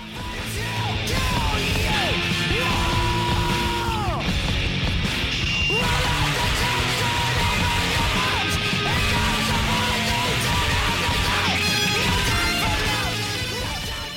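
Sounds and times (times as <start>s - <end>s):
loud dense distorted rock music: 0.0s - 14.1s
crashing drums: 0.4s - 14.0s
raw shouted hardcore punk scream: 2.5s - 4.2s, 5.7s - 13.2s.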